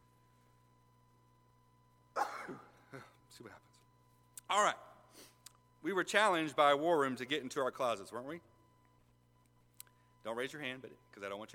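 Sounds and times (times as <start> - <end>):
person sneezing: 2.2 - 3.2
speech: 2.5 - 3.7, 4.5 - 8.5, 10.2 - 11.5.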